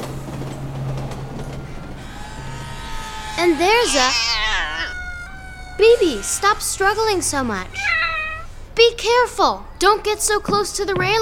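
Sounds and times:
downtown elevated L train rumbling past: 0.0 - 7.8
elevated L train metallic screeching: 1.6 - 8.3
speech: 3.4 - 4.4, 5.8 - 7.9, 8.8 - 11.2.

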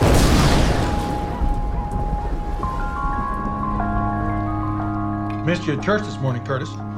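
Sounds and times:
thunderclap rolling into a deep rumble: 0.0 - 4.7
speech: 5.5 - 6.9.

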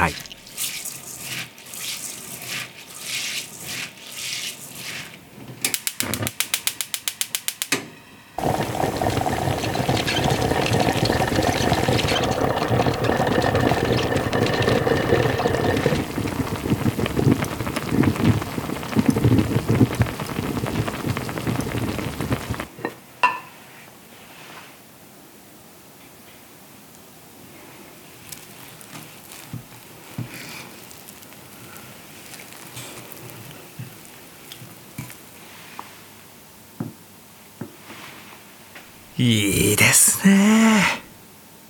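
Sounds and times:
speech: 0.0 - 0.3
rice simmering in a clay pot: 0.0 - 7.1, 8.4 - 24.7, 26.9 - 40.9
rapid rattling ticks: 8.4 - 22.7.

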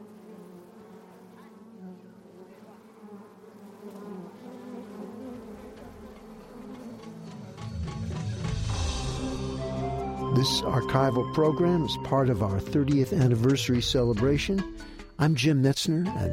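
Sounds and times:
individual bees droning past: 0.0 - 11.4
dense swarm of bees buzzing around a tree nest: 0.0 - 13.6
speech: 10.4 - 16.3.

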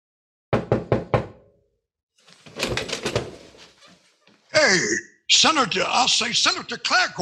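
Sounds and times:
knuckles knocking on a solid oak door: 0.5 - 1.4
speech: 4.7 - 7.2.

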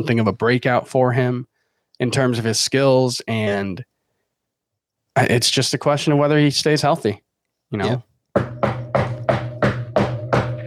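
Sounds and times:
speech: 0.0 - 3.9, 5.2 - 8.6
hard knocking on wood: 8.4 - 10.6.

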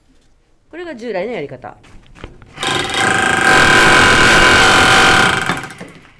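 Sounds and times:
speech: 0.7 - 1.9
power tool grinding tiles off an apartment exterior wall: 1.9 - 6.1.

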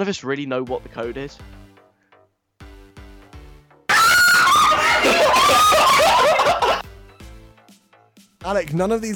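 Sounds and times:
speech: 0.0 - 1.6, 8.5 - 9.1
soft music: 0.0 - 3.9, 4.8 - 9.1
several girls screaming loudly and shrilly: 3.9 - 6.8
laughter: 4.4 - 6.8.

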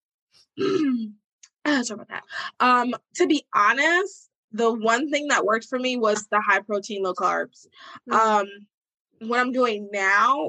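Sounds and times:
person coughing: 0.6 - 1.0
speech: 0.6 - 10.4.

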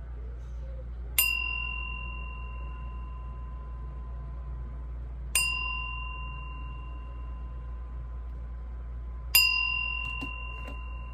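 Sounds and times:
faint low hum: 0.0 - 11.1
meditation bell struck to begin a meditation: 1.2 - 4.6, 5.3 - 8.2, 9.3 - 11.1.

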